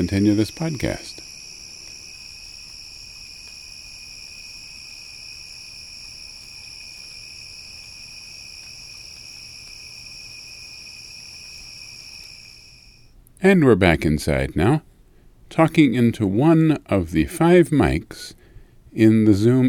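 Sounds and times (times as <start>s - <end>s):
speech: 0.0s - 1.2s, 13.4s - 14.9s, 15.5s - 19.6s
crickets chirping at night: 0.0s - 13.2s.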